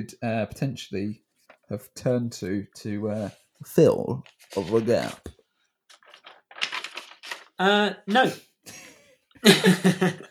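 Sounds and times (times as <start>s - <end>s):
speech: 0.0s - 5.4s, 7.6s - 8.8s, 9.4s - 10.2s
paper rustling and crinkling: 1.3s - 1.7s, 3.0s - 7.6s
laughter: 8.2s - 10.2s.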